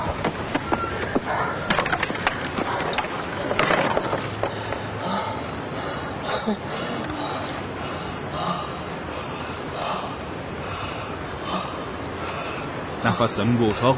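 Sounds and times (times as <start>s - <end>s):
steady noise: 0.0s - 13.9s
tired man breathing heavily out of breath: 3.8s - 13.0s
speech: 13.2s - 13.9s.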